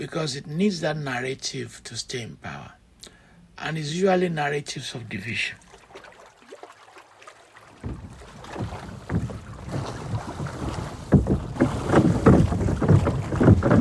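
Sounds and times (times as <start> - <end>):
speech: 0.0 - 2.8, 3.6 - 5.6
choppy water splashing against small boat: 5.1 - 13.7
rushing wind buffeting a small boat: 7.8 - 13.7.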